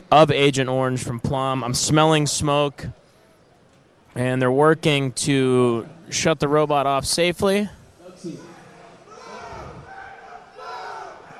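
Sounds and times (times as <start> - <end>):
speech: 0.1 - 3.0, 4.2 - 8.5
crowd cheering at a robot combat event: 8.2 - 11.3.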